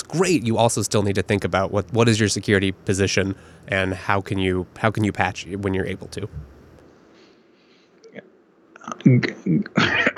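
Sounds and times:
faint noise: 0:00.0 - 0:10.1
speech: 0:00.1 - 0:06.6, 0:08.2 - 0:10.1
person coughing harshly: 0:09.5 - 0:10.1.

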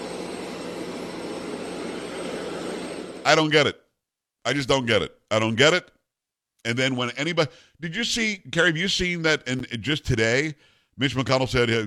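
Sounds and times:
helicopter engine running: 0:00.0 - 0:03.3
speech: 0:03.3 - 0:03.8, 0:04.4 - 0:06.0, 0:06.6 - 0:11.8.

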